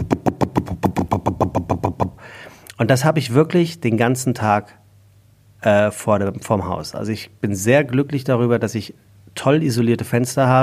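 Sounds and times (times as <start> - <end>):
voice imitating an idling stationary bus engine: 0.0 - 2.2
faint hiss: 0.0 - 10.6
speech: 2.8 - 4.8, 5.6 - 10.6.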